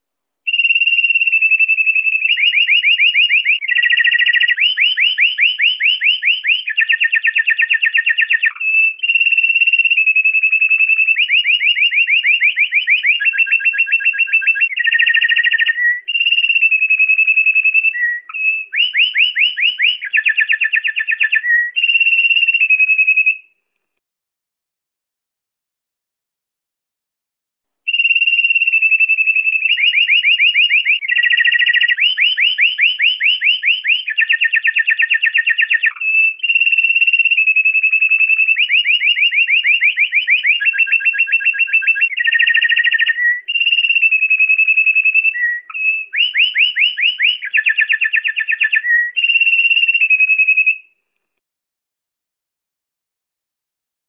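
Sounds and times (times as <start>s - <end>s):
pleci bird singing: 0.5s - 23.5s, 27.9s - 50.9s.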